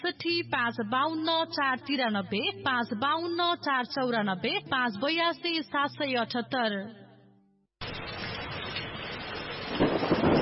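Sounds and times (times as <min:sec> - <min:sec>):
speech: 0:00.0 - 0:07.0
heavy rain: 0:07.8 - 0:10.4
thunder rumble: 0:07.8 - 0:10.4.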